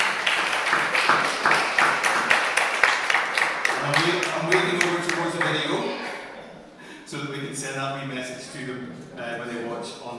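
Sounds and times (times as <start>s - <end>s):
audience applauding for a couple's diamond anniversary: 0.0s - 5.9s
speech: 7.6s - 10.1s.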